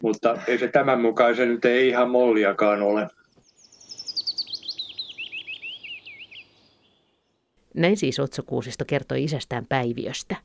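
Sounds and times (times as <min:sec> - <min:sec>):
speech: 0:00.0 - 0:03.2, 0:07.8 - 0:10.4
willow warbler singing: 0:03.4 - 0:07.5.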